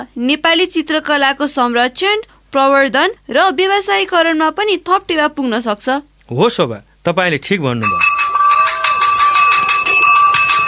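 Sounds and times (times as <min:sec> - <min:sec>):
speech: 0:00.0 - 0:08.1
school bell ringing: 0:07.8 - 0:10.6.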